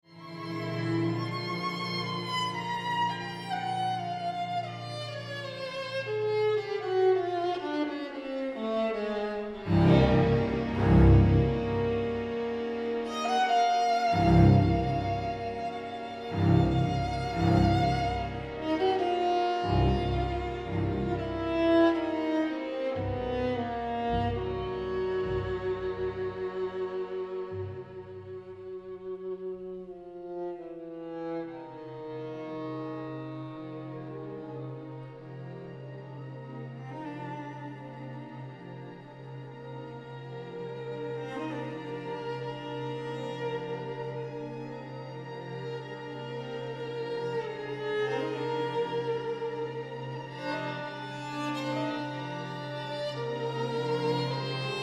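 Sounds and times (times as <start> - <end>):
viola concerto: 0.0 - 54.8.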